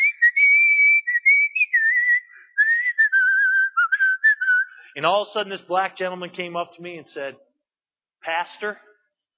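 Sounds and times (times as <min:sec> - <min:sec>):
person whistling a slow flowing choir song melody: 0:00.0 - 0:04.9
speech: 0:05.0 - 0:07.5, 0:08.2 - 0:08.9.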